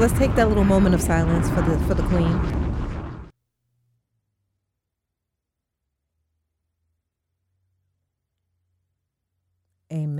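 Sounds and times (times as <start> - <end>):
speech: 0.0 - 2.6
bomb drop sound effect: 0.0 - 3.3.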